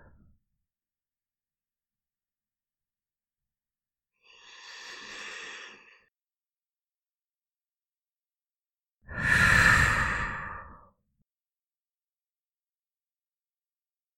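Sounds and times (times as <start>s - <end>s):
deep breathing in and out during a relaxation exercise: 4.2s - 6.1s, 9.1s - 11.0s.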